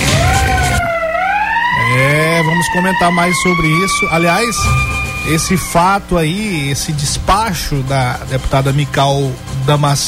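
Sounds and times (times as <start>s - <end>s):
police siren wailing: 0.0s - 7.9s
speech: 2.6s - 10.0s
engine-like rumble: 4.6s - 10.0s.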